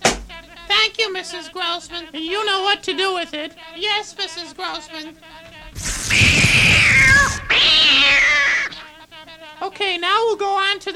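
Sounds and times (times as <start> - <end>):
speech: 1.0 - 5.4, 9.6 - 10.9
cat yowling: 5.8 - 8.9.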